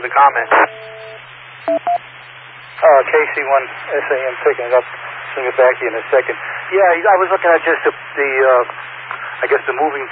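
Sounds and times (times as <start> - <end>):
speech: 0.0 - 0.9, 2.8 - 10.1
low hum: 0.0 - 2.8
radio static hiss: 0.0 - 10.1
radio repeater courtesy beep on an amateur radio net: 0.4 - 2.0.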